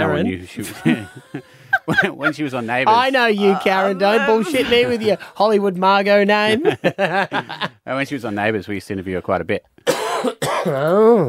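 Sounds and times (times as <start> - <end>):
speech: 0.0 - 11.2
laughter: 0.6 - 5.4, 6.5 - 7.8
person clearing throat and coughing harshly: 9.9 - 11.0.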